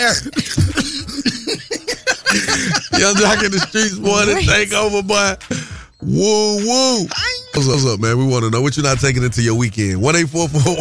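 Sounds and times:
speech: 0:00.0 - 0:00.8, 0:03.0 - 0:10.8
person coughing in harsh raspy bursts: 0:00.0 - 0:03.6
laughter: 0:00.1 - 0:04.5.

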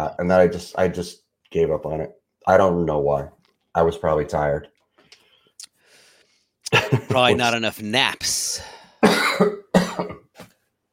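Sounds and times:
speech: 0:00.0 - 0:04.7, 0:06.7 - 0:10.5
person coughing: 0:09.0 - 0:10.4.

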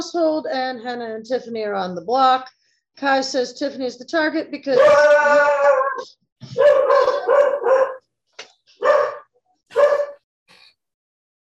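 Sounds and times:
speech: 0:00.0 - 0:08.0
dog barking and yowling: 0:04.8 - 0:05.1, 0:06.6 - 0:08.1, 0:08.8 - 0:10.2.

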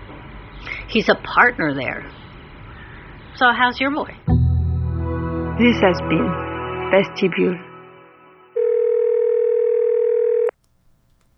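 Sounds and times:
speech: 0:00.9 - 0:02.2, 0:03.4 - 0:04.4, 0:05.6 - 0:07.7
telephone tone before a phone call: 0:08.6 - 0:10.6.

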